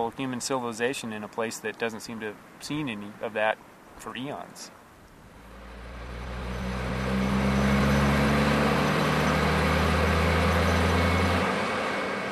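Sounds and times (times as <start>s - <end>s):
speech: 0.0s - 4.8s
seismic thumper truck engine rumbling: 5.1s - 12.3s.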